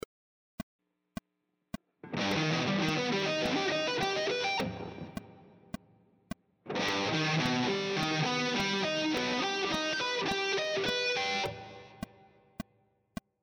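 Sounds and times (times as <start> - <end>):
guitar playing triad arpeggio sequences: 2.0 - 5.4, 6.7 - 12.2.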